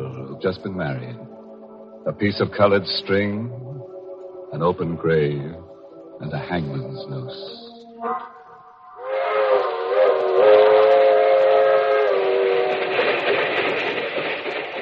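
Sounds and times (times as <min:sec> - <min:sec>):
steam passenger train rumbling and clattering along rails: 0:00.0 - 0:07.8, 0:09.0 - 0:14.8
speech: 0:00.4 - 0:01.3, 0:02.0 - 0:03.6, 0:04.5 - 0:05.6, 0:06.2 - 0:08.4
steam passenger train whistle: 0:07.5 - 0:13.6.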